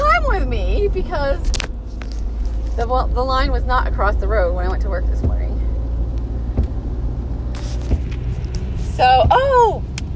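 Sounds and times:
car driving along a road with engine and tire noise: 0:00.0 - 0:10.1
faint higher rustles: 0:01.3 - 0:03.0, 0:05.4 - 0:09.2
speech: 0:02.8 - 0:05.4, 0:09.0 - 0:09.9.

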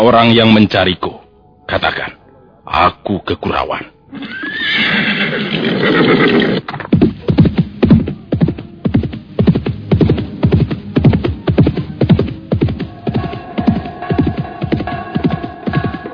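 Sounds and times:
speech: 0:00.0 - 0:01.1, 0:01.7 - 0:06.8
horse whinnying loudly: 0:04.1 - 0:06.7
galloping horse hoofbeats: 0:05.9 - 0:16.1.

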